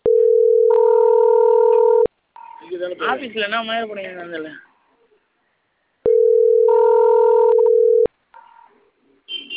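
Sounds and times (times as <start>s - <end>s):
loud steady telephone disconnected tone: 0.0s - 2.1s, 6.0s - 8.1s
speech: 2.9s - 4.7s.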